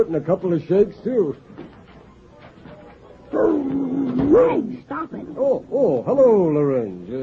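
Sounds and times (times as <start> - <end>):
speech: 0.0 - 1.7, 3.4 - 7.2
dog giving a loud drawn-out bark: 3.3 - 4.6.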